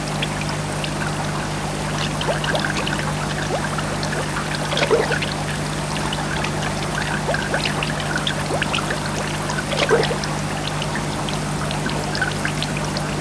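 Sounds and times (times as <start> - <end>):
aquarium water trickling and splashing: 0.0 - 13.2
steady low aquarium pump hum: 0.0 - 13.2.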